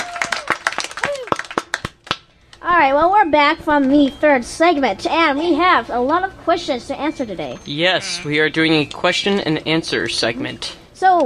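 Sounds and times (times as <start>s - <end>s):
rising-and-falling vocal whoops: 0.0s - 1.3s
small group applauding: 0.0s - 2.3s
speech: 2.8s - 11.2s.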